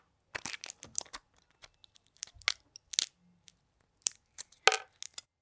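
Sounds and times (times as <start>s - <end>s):
pills rattling: 0.4s - 3.1s, 4.0s - 5.2s.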